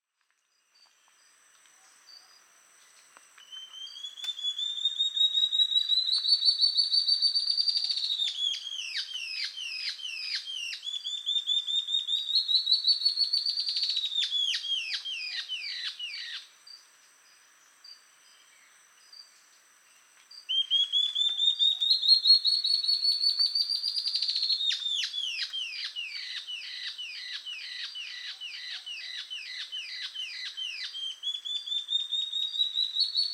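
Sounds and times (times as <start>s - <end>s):
Ocellated Antbird Phaenostictus mcleannani mcleannani calling: 3.4s - 16.5s, 20.4s - 33.3s.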